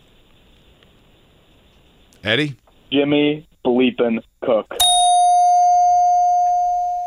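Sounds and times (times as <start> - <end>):
speech: 2.2 - 4.9
ding-dong bell chime: 4.8 - 7.0.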